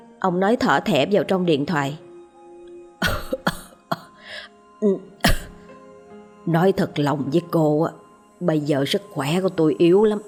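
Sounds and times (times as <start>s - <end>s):
speech: 0.2s - 2.0s, 4.8s - 5.1s, 6.4s - 10.2s
old man throat clearing: 3.0s - 4.2s, 5.2s - 5.7s
old man coughing violently, clutching his chest: 3.0s - 4.4s, 5.2s - 5.7s.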